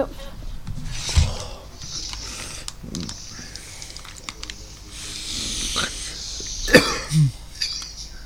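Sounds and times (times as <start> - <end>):
faint low voices: 0.0 - 8.2
rustling: 0.8 - 6.7
soft clicks: 1.8 - 5.1, 7.6 - 8.1
short sharp coughs: 6.6 - 7.4.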